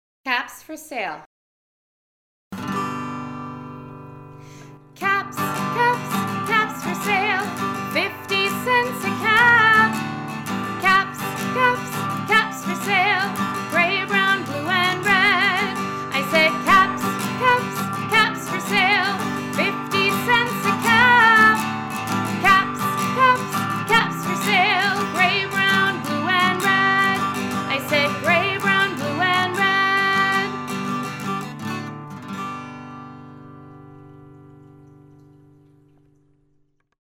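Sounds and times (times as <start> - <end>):
vocals: 0.3 - 1.2, 5.0 - 31.1
guitar: 2.6 - 36.7.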